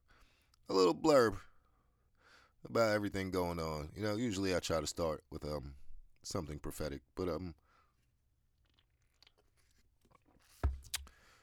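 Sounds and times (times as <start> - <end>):
speech: 0.7 - 1.5, 2.6 - 7.6
coffee cup bump: 10.6 - 11.0.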